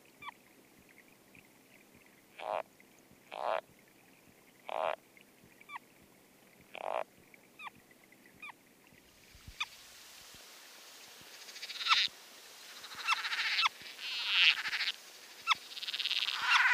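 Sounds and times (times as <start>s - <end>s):
foothill yellow-legged frog clicking and rasping: 2.4s - 2.7s, 3.3s - 3.6s, 4.7s - 5.0s, 6.7s - 7.7s, 12.7s - 16.7s.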